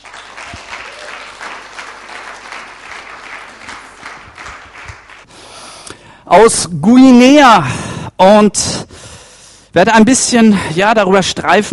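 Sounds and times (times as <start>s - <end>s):
audience applause welcoming a speaker: 0.0s - 5.3s
speech: 6.3s - 8.9s, 9.8s - 11.7s.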